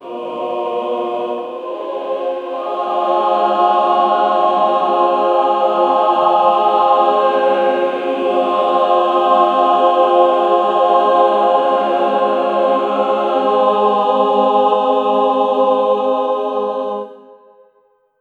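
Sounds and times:
Gregorian choir chanting: 0:00.0 - 0:18.1.

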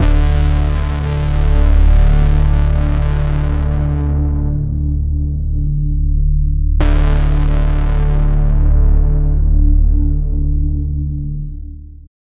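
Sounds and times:
distorted punchy bass: 0:00.0 - 0:12.0.

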